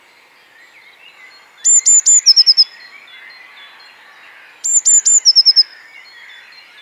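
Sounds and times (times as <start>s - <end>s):
birds calling: 1.1s - 6.8s
Eurasian blue tit Cyanistes caeruleus song with buzzy trill: 1.3s - 2.8s, 4.7s - 6.8s.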